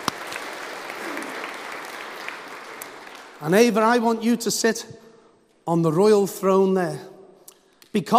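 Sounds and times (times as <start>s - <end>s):
crowd applauding: 0.0s - 3.8s
speech: 3.4s - 5.0s, 5.6s - 7.1s, 7.9s - 8.1s.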